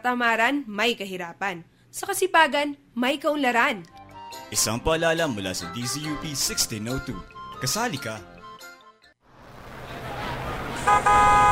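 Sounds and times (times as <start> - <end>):
speech: 0.0 - 8.3
jeepney horn honking: 10.8 - 11.5.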